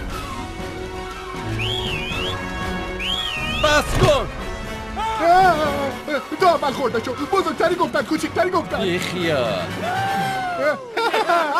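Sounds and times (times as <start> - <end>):
music: 0.0 - 11.5
person whistling a short wavering tune: 1.4 - 3.6
speech: 3.6 - 4.4, 5.2 - 11.5
laughter: 10.0 - 11.5.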